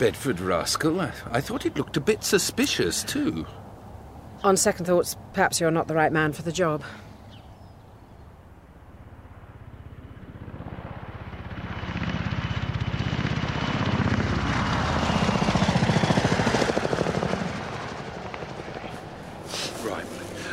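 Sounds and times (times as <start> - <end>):
speech: 0.0 - 3.6, 4.4 - 7.1
police helicopter passing overhead: 9.5 - 20.5.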